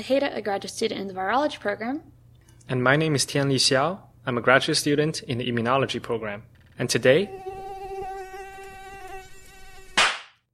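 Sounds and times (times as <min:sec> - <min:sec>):
speech: 0:00.0 - 0:07.6
mosquito whining: 0:06.9 - 0:10.0.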